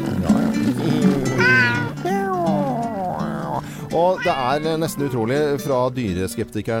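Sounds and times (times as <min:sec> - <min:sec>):
cat meowing: 0:01.0 - 0:05.8
speech: 0:04.0 - 0:06.7.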